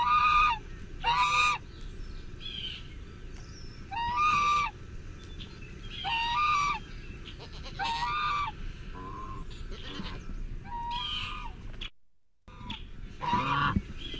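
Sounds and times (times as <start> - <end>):
goose giving loud nasal honks: 0.0 - 1.6, 3.9 - 4.8, 6.0 - 11.6, 12.5 - 13.8.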